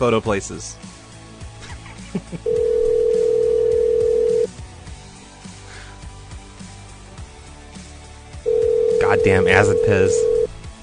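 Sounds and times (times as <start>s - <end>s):
speech: 0.0s - 0.9s, 2.1s - 2.6s, 9.2s - 10.3s
telephone ringing with steady electronic tone: 2.5s - 4.5s, 8.5s - 10.5s.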